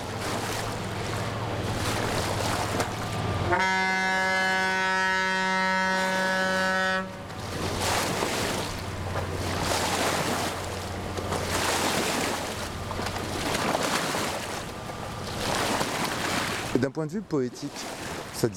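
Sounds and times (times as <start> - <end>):
38.5-metre river barge engine drone: 0.0 - 18.5
barge wake waves washing and splashing against the bank: 0.0 - 18.5
river barge horn blast: 3.3 - 7.4
speech: 3.5 - 3.8, 17.0 - 18.5.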